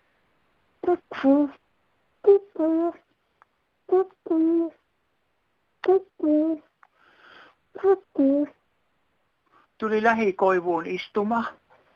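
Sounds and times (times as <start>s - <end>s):
human voice imitating a cuckoo call: 0.8s - 1.6s, 2.2s - 3.1s, 3.9s - 4.8s, 5.8s - 6.7s, 7.8s - 8.6s
speech: 0.9s - 1.6s, 2.2s - 3.0s, 3.9s - 4.8s, 5.8s - 6.7s, 7.8s - 8.6s, 9.8s - 11.6s.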